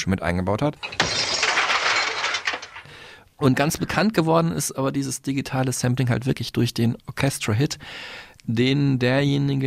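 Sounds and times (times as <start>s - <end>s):
speech: 0.0s - 1.1s, 3.4s - 9.6s
glass shards tinkling and clattering: 0.8s - 2.9s
glass smashing: 0.8s - 3.0s.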